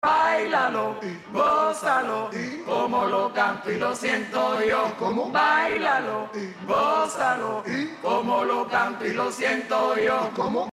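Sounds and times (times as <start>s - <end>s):
synthesized singing voice: 0.0s - 10.7s.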